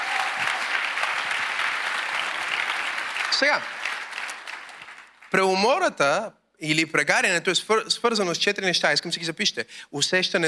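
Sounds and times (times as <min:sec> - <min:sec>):
audience applauding: 0:00.0 - 0:05.5
speech: 0:03.4 - 0:03.8, 0:05.3 - 0:10.4.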